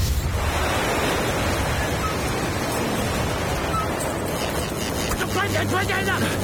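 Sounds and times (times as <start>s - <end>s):
strong typhoon wind at sea near a lighthouse: 0.0s - 6.4s
speech: 5.6s - 6.4s.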